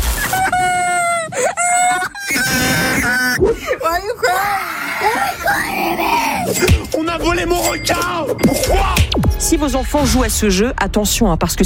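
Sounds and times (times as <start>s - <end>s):
very young video game player screaming and crying: 0.3s - 3.4s, 4.2s - 6.7s
speech: 6.5s - 11.6s.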